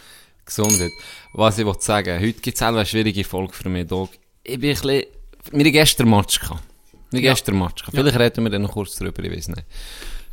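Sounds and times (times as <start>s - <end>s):
speech: 0.5s - 10.2s
glasses clinking in a toast: 0.6s - 1.9s.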